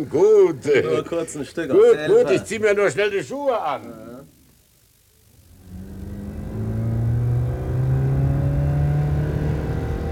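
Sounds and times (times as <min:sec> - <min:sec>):
speech: 0:00.0 - 0:04.1
car engine accelerating as the car drives off: 0:05.5 - 0:10.1.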